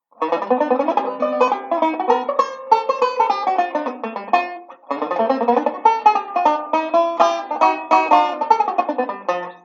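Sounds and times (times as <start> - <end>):
jazzy I V I etude on banjo: 0.1 - 9.6.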